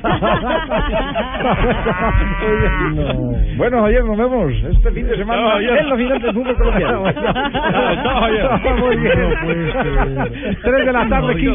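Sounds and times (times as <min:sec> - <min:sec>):
laughter: 0:00.0 - 0:03.6, 0:04.8 - 0:11.5
speech: 0:00.1 - 0:11.5
several cows mooing: 0:01.4 - 0:03.5, 0:08.1 - 0:11.5.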